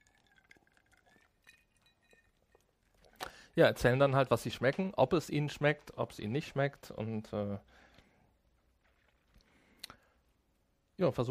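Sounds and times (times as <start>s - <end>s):
glasses clinking in a toast: 0.2s - 2.6s
speech: 3.6s - 7.8s, 11.0s - 11.2s.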